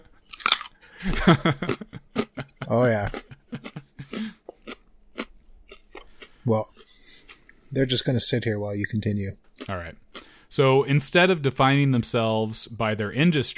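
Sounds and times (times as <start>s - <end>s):
person biting into raw carrots, crunching into the microphone: 0.0s - 1.8s, 3.1s - 7.9s
people laughing: 0.9s - 4.4s
speech: 1.0s - 2.0s, 2.7s - 3.3s, 6.5s - 6.7s, 7.7s - 10.0s, 10.6s - 13.5s.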